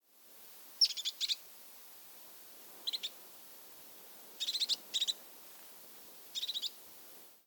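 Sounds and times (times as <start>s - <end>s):
European crested tit Lophophanes cristatus calling: 0.8s - 1.4s, 2.8s - 3.1s, 4.4s - 5.2s, 6.4s - 6.8s.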